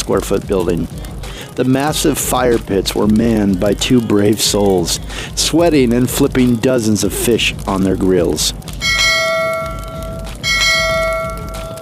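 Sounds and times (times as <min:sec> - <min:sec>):
low rumble: 0:00.0 - 0:11.8
speech: 0:00.1 - 0:08.8
brass bell struck with a spatula: 0:08.8 - 0:11.8.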